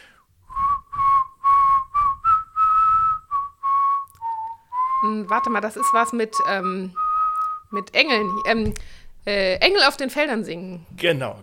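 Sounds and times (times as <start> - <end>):
breaths: 0.0 - 0.3, 8.8 - 9.2
person whistling a Christmas carol melody: 0.5 - 8.6
speech: 5.2 - 7.0, 7.7 - 11.4.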